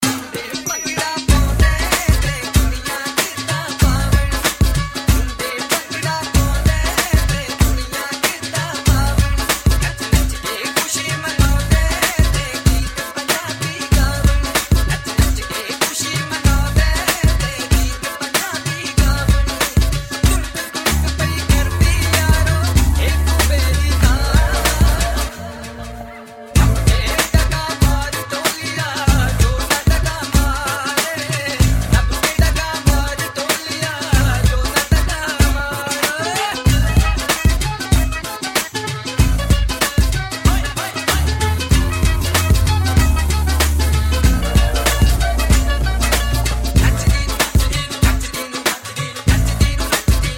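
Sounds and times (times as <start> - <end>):
dhol drum: 0.0 - 25.3, 26.6 - 50.3.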